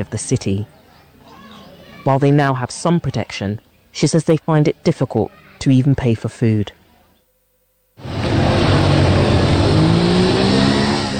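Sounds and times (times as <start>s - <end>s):
speech: 0.0s - 0.8s, 2.0s - 6.8s
motorbike engine revving by the side of a street: 8.0s - 11.1s.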